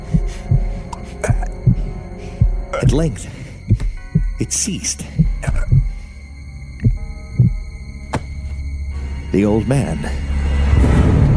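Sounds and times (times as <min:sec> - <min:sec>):
muffled heartbeat: 0:00.0 - 0:06.0, 0:06.8 - 0:07.7
faint continuous hum: 0:00.0 - 0:10.3
speech: 0:02.9 - 0:03.4, 0:04.4 - 0:05.7, 0:09.4 - 0:10.3.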